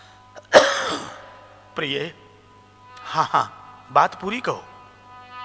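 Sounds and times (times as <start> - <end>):
single sharp cough with breathy rasp: 0.4 - 1.3
speech: 1.8 - 2.2, 3.1 - 4.7.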